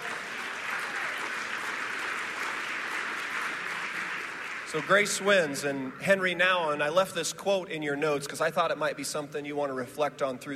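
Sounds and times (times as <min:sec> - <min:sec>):
audience applauding in a large room: 0:00.0 - 0:05.9
speech: 0:04.7 - 0:10.5.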